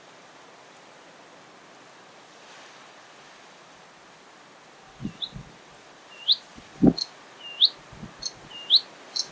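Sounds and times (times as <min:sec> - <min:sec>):
faint background hiss: 0:00.0 - 0:09.3
Bluethroat song of upslurred whistled notes: 0:06.1 - 0:09.3.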